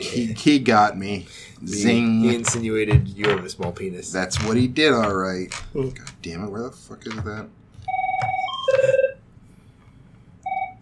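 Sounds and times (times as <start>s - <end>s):
speech: 0.0s - 7.6s
low room hum: 0.0s - 10.8s
phone ringing with a bright electronic warble: 7.8s - 9.2s, 10.4s - 10.8s.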